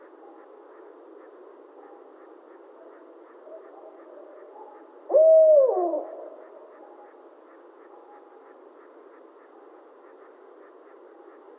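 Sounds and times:
barred owl giving a hoot: 2.2 - 11.4.

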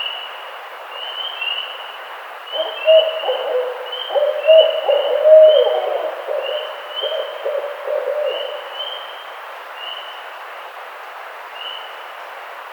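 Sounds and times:
barred owl giving low uneven hoots: 2.5 - 9.1.

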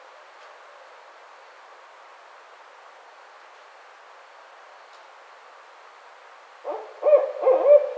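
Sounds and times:
barred owl hooting: 6.7 - 7.9.

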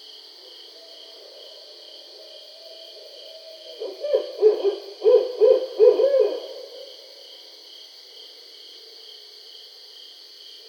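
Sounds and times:
barred owl hooting: 2.6 - 6.9.

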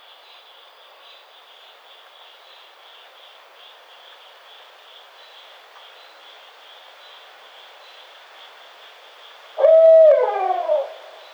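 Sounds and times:
barred owl hooting: 9.6 - 11.2.

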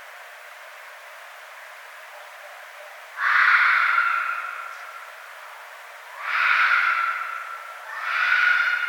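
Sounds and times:
red fox harsh raspy cries: 3.2 - 4.7, 6.2 - 8.8.

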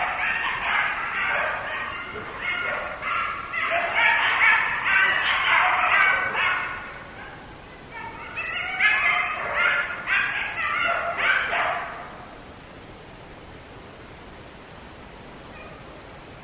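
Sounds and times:
several coyotes yipping and yelping: 0.0 - 12.4, 15.5 - 15.9.

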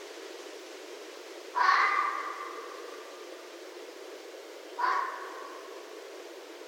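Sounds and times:
low steady hiss: 0.0 - 6.6
red fox screams: 1.6 - 2.8, 4.8 - 5.6.

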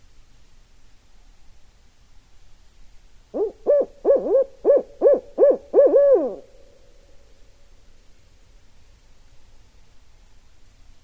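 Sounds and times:
barred owl hooting: 3.4 - 6.8.

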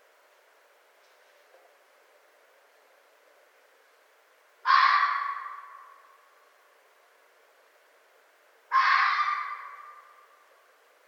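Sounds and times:
red fox harsh raspy scream: 4.6 - 6.1, 8.7 - 10.3.

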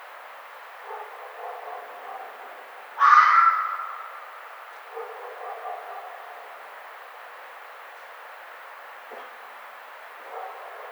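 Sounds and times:
red fox hoarse scream: 3.0 - 4.3.

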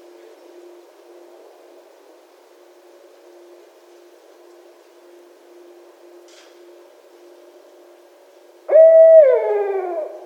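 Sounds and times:
barred owl hoot: 8.7 - 10.2.

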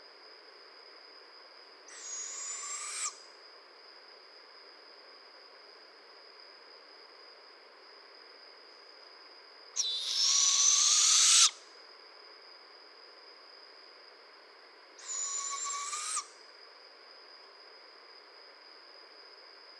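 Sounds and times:
barred owl hissing screeches: 1.9 - 3.2, 9.8 - 11.6, 15.0 - 16.3.

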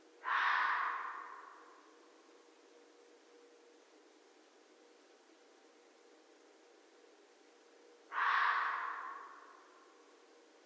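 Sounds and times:
background hum: 0.0 - 10.6
red fox barking: 0.2 - 1.8, 8.1 - 9.7.

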